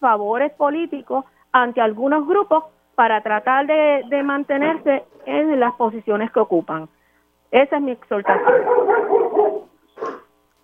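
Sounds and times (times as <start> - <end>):
speech: 0.0 - 9.6
dog barking: 8.2 - 10.3.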